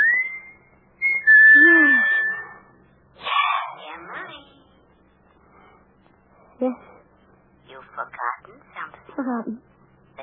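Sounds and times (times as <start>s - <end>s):
man whistling a signal: 0.0s - 2.7s
speech: 6.6s - 6.9s, 9.2s - 9.7s.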